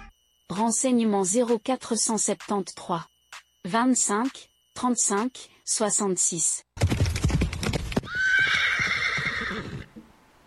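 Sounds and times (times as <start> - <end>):
speech: 0.6 - 6.7
horse hooves clip-clopping: 6.8 - 8.4
horse whinnying: 8.0 - 9.9.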